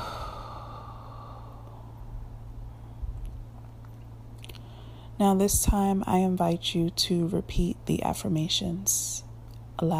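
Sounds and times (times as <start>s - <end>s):
long breathy exhale through the mouth: 0.0s - 1.9s
low steady hum: 0.0s - 9.9s
speech: 5.2s - 9.9s.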